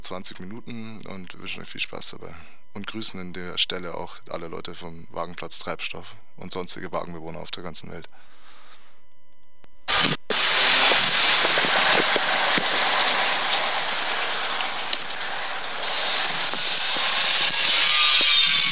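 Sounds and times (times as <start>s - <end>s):
speech: 0.1s - 8.4s, 10.0s - 10.2s
angle grinder cutting: 9.9s - 18.7s.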